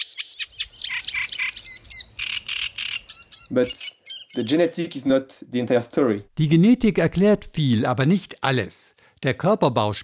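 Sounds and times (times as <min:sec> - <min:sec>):
reed warbler singing: 0:00.0 - 0:05.1
speech: 0:03.5 - 0:10.0.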